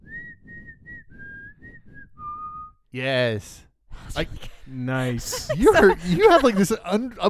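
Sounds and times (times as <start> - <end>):
person whistling a song melody: 0.0 - 2.8
speech: 2.9 - 3.6, 4.2 - 7.2
laughter: 4.4 - 7.2.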